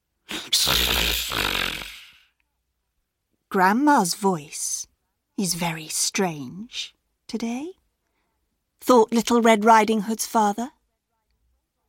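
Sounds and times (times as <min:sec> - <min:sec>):
human voice imitating a wolf snoring: 0:00.3 - 0:02.3
speech: 0:03.6 - 0:04.8, 0:05.4 - 0:07.8, 0:08.8 - 0:10.8.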